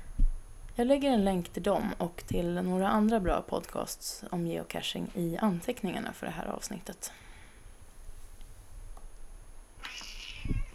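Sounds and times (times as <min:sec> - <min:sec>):
quiet low background hum: 0:00.0 - 0:10.7
speech: 0:00.8 - 0:07.3
pet cat meowing: 0:09.8 - 0:10.7.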